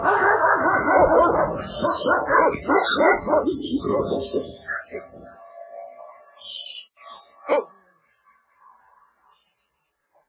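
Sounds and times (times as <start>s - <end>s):
dog yipping and whimpering: 0.0s - 4.9s
dog barking: 0.0s - 5.2s, 7.4s - 7.8s.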